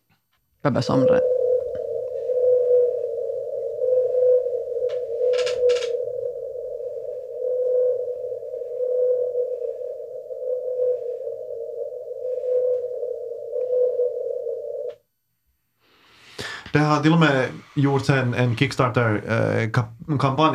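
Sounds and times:
speech: 0.6s - 1.4s, 16.8s - 20.5s
replayed recording of a lone whale's call: 0.7s - 15.0s
crackling burst: 0.9s - 14.9s.

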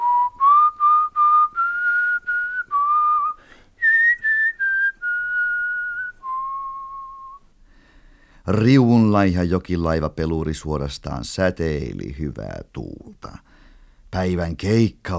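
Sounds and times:
man whistling a cheerful tune as he walks in: 0.0s - 7.4s
speech: 8.5s - 13.5s, 14.1s - 15.1s.

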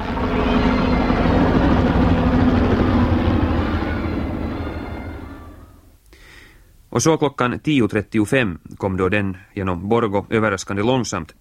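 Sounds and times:
helicopter rotor roar passing overhead: 0.0s - 5.9s
speech: 7.0s - 11.4s.

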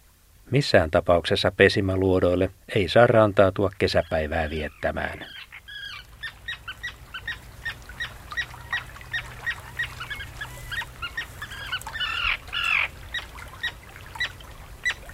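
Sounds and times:
steady low hum: 0.0s - 15.1s
speech: 0.5s - 5.5s
Common Tern alarm calling with sharp kit notes and grating scream: 3.8s - 15.1s.

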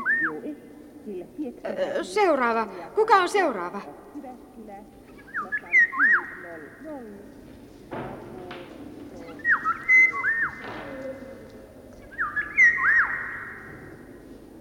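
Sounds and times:
bird perched on a person's shoulder chirping and whistling: 0.0s - 0.5s, 5.1s - 6.5s, 9.2s - 11.1s, 12.0s - 14.0s
speech: 0.5s - 5.7s, 6.6s - 8.1s
rustling: 4.1s - 14.6s.

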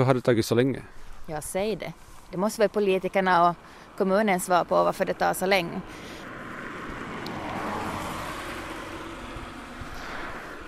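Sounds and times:
speech: 0.0s - 6.2s
car passing: 3.0s - 10.6s.

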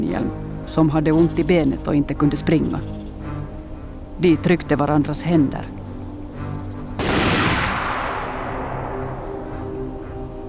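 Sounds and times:
speech: 0.0s - 3.0s, 4.2s - 5.8s
volley of rifle shots fired by soldiers at prisoners: 7.0s - 9.1s.

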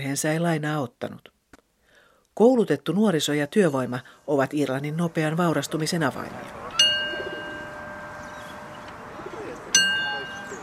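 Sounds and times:
speech: 0.0s - 1.4s, 2.4s - 6.8s
low steady murmur: 6.2s - 10.6s
toy train bell ding: 6.7s - 10.6s.

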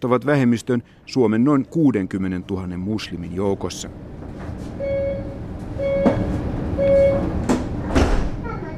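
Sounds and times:
speech: 0.0s - 4.4s
metro train carriage rumble heading east in Helsinki Finland: 2.9s - 8.7s
metro train sliding doors closing: 4.0s - 8.7s
metro train warning beeps: 4.8s - 7.3s.

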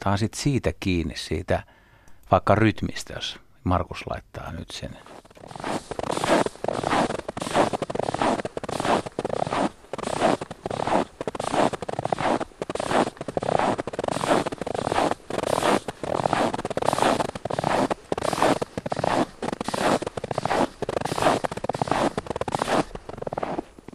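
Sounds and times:
speech: 0.0s - 6.1s
footsteps creaking and crunching on snow over ice in minus 25 degree frost: 5.0s - 23.9s.

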